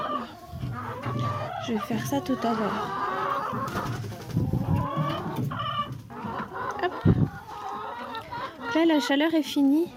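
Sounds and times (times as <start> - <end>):
hens clucking around a chicken coop while scratching at the ground after rain: 0.0 - 9.9
speech: 1.6 - 4.1, 8.8 - 9.9.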